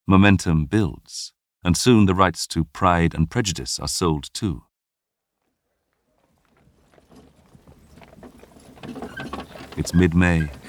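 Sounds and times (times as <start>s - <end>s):
speech: 0.1s - 4.7s, 9.8s - 10.6s
horse hooves clopping: 5.2s - 10.6s
busy street murmur: 5.4s - 10.6s
carriage rolling along: 6.4s - 10.6s
faint rattling: 6.6s - 10.6s.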